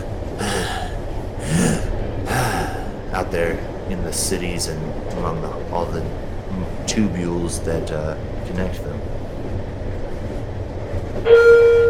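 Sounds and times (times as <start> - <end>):
train rolling by: 0.0 - 11.8
speech: 3.3 - 9.1
train horn blast: 11.2 - 11.8.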